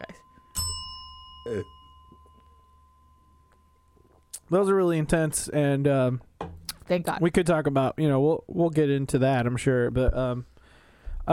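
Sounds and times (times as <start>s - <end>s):
bell struck giving a bright metallic ring: 0.0s - 5.1s
speech: 1.5s - 1.8s, 4.5s - 6.3s, 6.9s - 10.5s.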